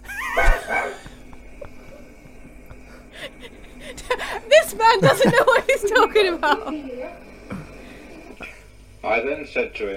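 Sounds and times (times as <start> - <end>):
laughter: 0.0 - 8.6
dog yipping and barking: 0.4 - 1.2
speech: 4.7 - 7.2, 9.0 - 9.9.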